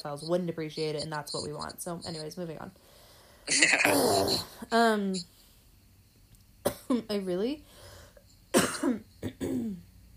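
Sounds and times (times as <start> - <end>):
speech: 0.0 - 5.4, 6.6 - 7.7, 8.8 - 9.9
person coughing harshly: 3.5 - 4.5, 6.7 - 7.1, 8.5 - 9.8.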